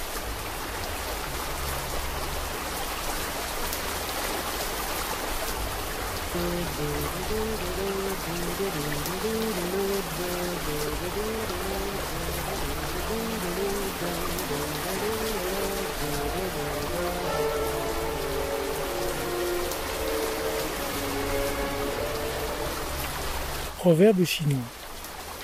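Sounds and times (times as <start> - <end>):
dense rain pattering on a surface: 0.0 - 25.4
soft melodic line of sustained tones: 6.3 - 23.8
speech: 6.4 - 12.2, 13.1 - 17.8, 23.8 - 24.8.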